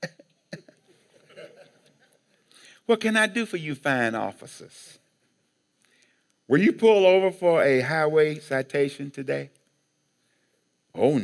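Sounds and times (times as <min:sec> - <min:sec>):
man fake coughing: 0:00.0 - 0:01.8
speech: 0:02.9 - 0:05.0, 0:06.5 - 0:09.6, 0:10.9 - 0:11.2.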